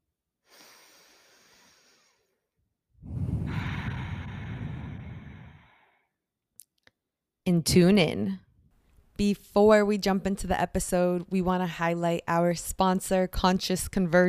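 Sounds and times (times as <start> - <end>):
deep breathing: 0.4 - 2.4, 3.0 - 6.2
speech: 7.5 - 8.4, 9.2 - 14.2.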